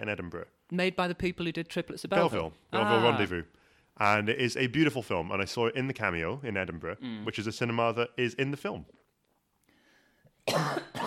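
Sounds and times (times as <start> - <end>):
speech: 0.0 - 9.0
quiet breath: 9.6 - 10.4
harsh raspy coughs: 10.4 - 11.0.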